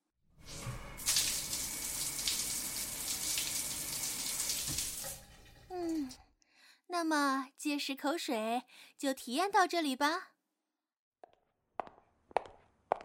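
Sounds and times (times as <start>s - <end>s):
shower water running: 0.4s - 6.2s
speech: 7.0s - 10.3s.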